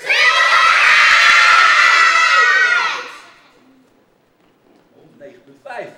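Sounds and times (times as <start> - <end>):
crowd screaming together at full volume: 0.0 - 3.5.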